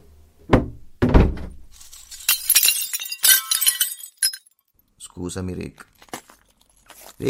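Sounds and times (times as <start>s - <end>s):
heavy thuds against a window: 0.5s - 1.6s
window glass breaking and shards shattering: 1.7s - 4.6s
speech: 5.2s - 6.0s.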